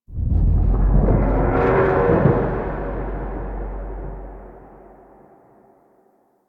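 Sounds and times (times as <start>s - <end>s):
dragon passing by: 0.1s - 5.2s
death stinger: 0.1s - 5.7s.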